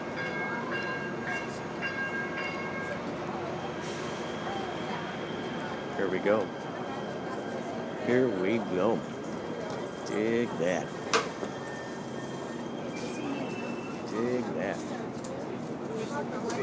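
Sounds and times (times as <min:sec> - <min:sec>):
subway train pulling into station rumbling: 0:00.0 - 0:16.6
speech: 0:06.0 - 0:06.6, 0:08.0 - 0:09.1, 0:10.1 - 0:11.0, 0:14.2 - 0:15.2
faint high metallic squeals from subway train wheels and brakes: 0:11.4 - 0:14.1.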